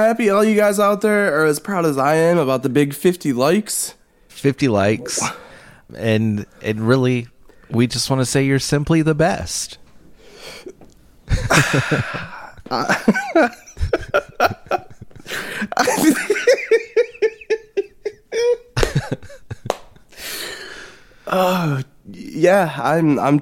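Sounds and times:
speech: 0:00.0 - 0:09.8, 0:11.3 - 0:16.8, 0:21.3 - 0:23.3
person sniffling: 0:05.0 - 0:05.8, 0:10.2 - 0:10.8, 0:20.0 - 0:21.8
giggly hiccuping laughter: 0:11.3 - 0:19.8.

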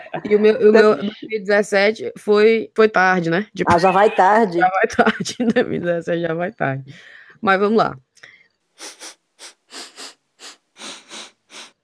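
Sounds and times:
laughter: 0:00.0 - 0:01.2, 0:03.7 - 0:05.8
speech: 0:00.1 - 0:08.1
loud breathy sniffs: 0:08.8 - 0:11.8.

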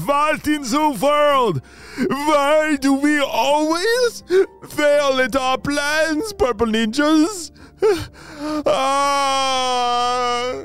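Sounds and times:
person performing a cartoon villain's crying and wailing: 0:00.0 - 0:10.6
speech: 0:00.1 - 0:10.6.

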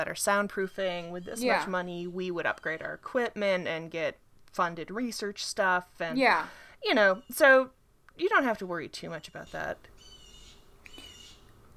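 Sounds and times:
speech: 0:00.0 - 0:09.9
blue jay calling: 0:00.6 - 0:03.5, 0:06.8 - 0:07.7, 0:09.0 - 0:11.6.

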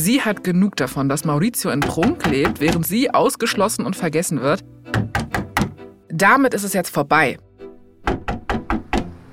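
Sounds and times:
speech: 0:00.0 - 0:05.2, 0:06.2 - 0:07.5
heavy knocks on a door: 0:01.8 - 0:02.9, 0:04.9 - 0:05.8, 0:08.0 - 0:09.2.

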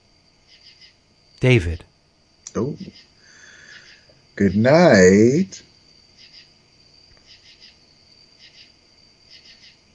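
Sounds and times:
cricket chirping in a rhythmic pattern at night: 0:00.0 - 0:09.9
speech: 0:01.4 - 0:01.9, 0:02.6 - 0:03.1, 0:04.4 - 0:05.7.

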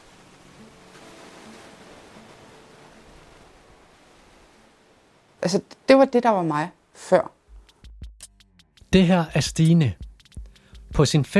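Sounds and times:
rushing surf breaking on a North Sea beach: 0:00.0 - 0:05.1
wind on a North Sea beach: 0:00.0 - 0:07.2
speech: 0:05.4 - 0:07.4, 0:08.9 - 0:10.0, 0:11.0 - 0:11.3.

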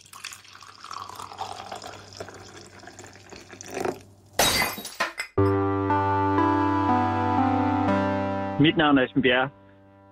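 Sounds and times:
glass shattering: 0:04.4 - 0:05.4
sustained musical chord: 0:05.5 - 0:10.1
speech: 0:08.6 - 0:09.6.

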